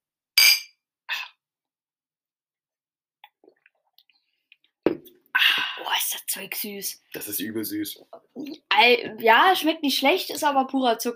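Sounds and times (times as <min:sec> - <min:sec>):
glasses clinking in a toast: 0:00.4 - 0:00.8
speech: 0:06.0 - 0:11.1.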